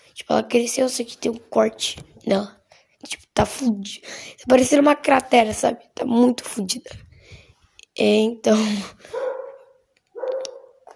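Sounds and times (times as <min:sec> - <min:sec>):
speech: 0:00.2 - 0:07.0, 0:08.0 - 0:09.2
dog barking: 0:09.1 - 0:10.8.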